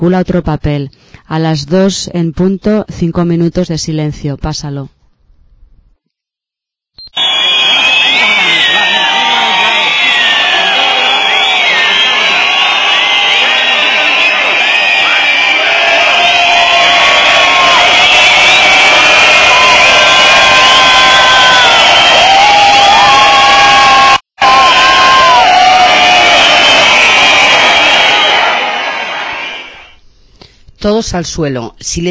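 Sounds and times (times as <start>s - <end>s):
speech: 0.0s - 5.0s, 30.8s - 32.0s
whoops and calls from street crowd: 7.0s - 29.9s
large street crowd cheering and shouting: 7.1s - 29.9s.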